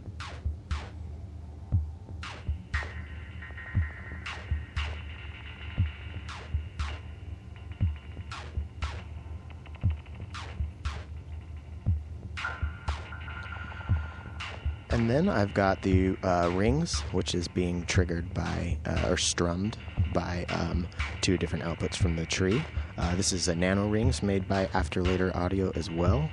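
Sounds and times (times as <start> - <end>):
modular synth low throbbing thumps through self-modulating filter: 0.0 - 26.3
sustained modular synth tones drifting through hazy reverb wash: 0.2 - 17.7
speech: 14.9 - 26.3.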